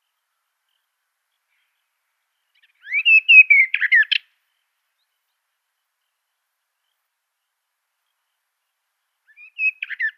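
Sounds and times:
Western Orphean Warbler song: 0:00.0 - 0:10.1.

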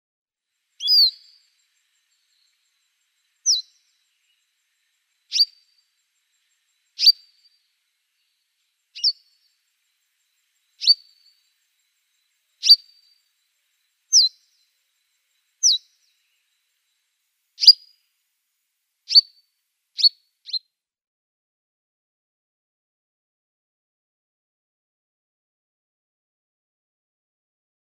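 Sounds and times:
African Pied Wagtail calls: 0:00.8 - 0:07.5, 0:08.9 - 0:13.2, 0:14.1 - 0:16.5, 0:17.6 - 0:17.9, 0:19.1 - 0:19.3, 0:20.0 - 0:20.6.

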